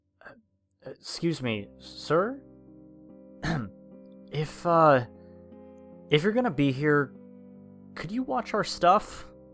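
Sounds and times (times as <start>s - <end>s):
speech: 0.9s - 2.5s, 4.3s - 5.2s, 6.1s - 7.2s, 8.0s - 9.3s
person imitating clearing throat: 3.4s - 3.8s.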